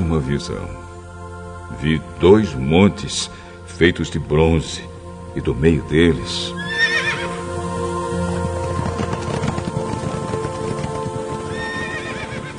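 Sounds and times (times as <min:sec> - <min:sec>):
speech: 0:00.1 - 0:00.9, 0:01.7 - 0:06.7
horses whinnying: 0:06.6 - 0:07.4, 0:08.8 - 0:12.5
many hooves and rolling wheels of war chariots: 0:08.3 - 0:12.5.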